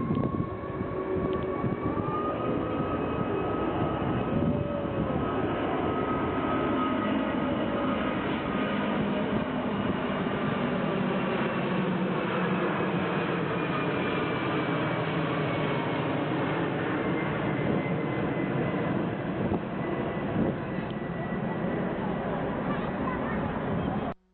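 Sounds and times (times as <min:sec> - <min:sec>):
Airbus A380 four-engine jet airliner engines roaring overhead: 0:00.0 - 0:24.2.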